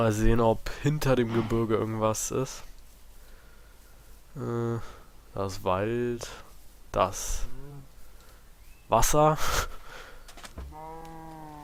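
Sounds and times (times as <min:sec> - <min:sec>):
speech: 0:00.0 - 0:02.7, 0:04.4 - 0:07.6, 0:08.9 - 0:09.8
steady noise: 0:00.0 - 0:11.6
cow mooing in a video game: 0:10.6 - 0:11.6.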